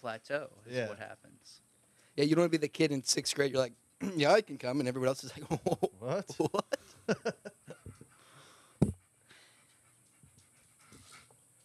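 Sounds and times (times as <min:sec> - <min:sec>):
speech: 0:00.0 - 0:07.7
laughter: 0:05.3 - 0:08.0
heavy overweight dog panting hard while lying in the sun: 0:07.9 - 0:11.3.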